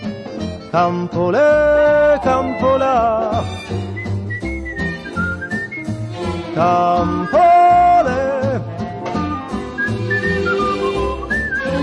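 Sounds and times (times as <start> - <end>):
full steady musical backing: 0.0 - 11.8
speech: 0.7 - 4.0, 6.6 - 7.6
bright melodic human whistling a cheerful tune in a jingle: 3.8 - 6.0, 7.1 - 8.2, 9.2 - 11.8.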